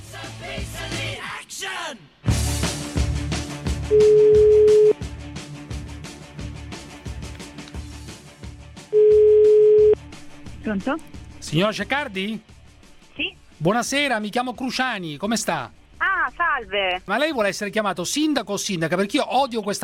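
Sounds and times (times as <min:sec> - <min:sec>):
speech: 0:03.9 - 0:04.3, 0:10.7 - 0:12.5, 0:13.2 - 0:19.8
Italian telephone ringback tone while placing a call: 0:03.9 - 0:05.0, 0:09.0 - 0:10.0.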